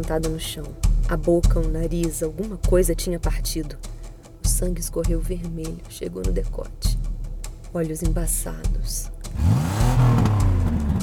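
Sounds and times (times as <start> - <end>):
speech: 0.0 - 3.9, 4.6 - 7.0, 7.7 - 10.4
car engine revving hard: 9.3 - 11.0.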